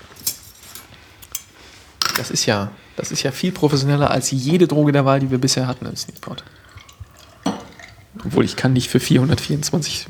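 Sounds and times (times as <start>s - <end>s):
speech: 2.2s - 6.6s, 8.2s - 10.0s
frosted glasses with ice clinking: 6.0s - 8.7s.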